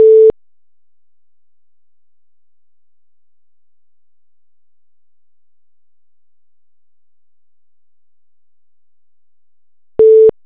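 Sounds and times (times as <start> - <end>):
call waiting tone: 0.0 - 0.3, 10.0 - 10.3.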